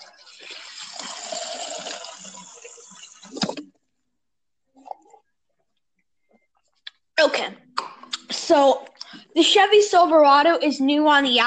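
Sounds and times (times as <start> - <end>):
water pouring into a container: 0.0 - 3.6
speech: 7.2 - 7.6, 8.5 - 11.4.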